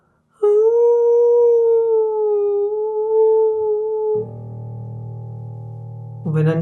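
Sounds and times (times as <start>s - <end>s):
wolf howling: 0.4s - 4.4s
speech: 6.4s - 6.6s.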